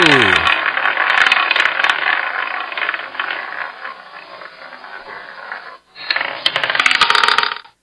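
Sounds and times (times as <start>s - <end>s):
person speaking: 0.0s - 0.5s
roulette wheel spinning with a rolling marble: 0.0s - 7.8s.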